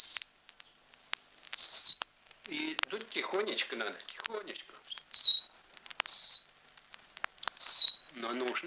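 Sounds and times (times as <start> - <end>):
bird-call whistle imitating a nightingale: 0.0 - 0.4, 1.5 - 2.1, 4.9 - 6.6, 7.4 - 8.1
speech: 2.5 - 5.0, 8.2 - 8.6.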